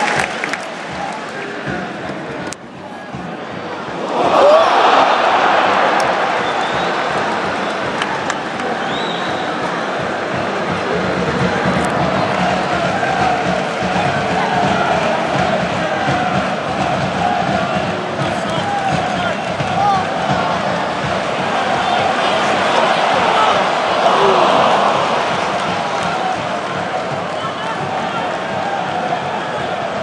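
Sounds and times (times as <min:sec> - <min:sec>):
crowd noise: 0:00.0 - 0:30.0.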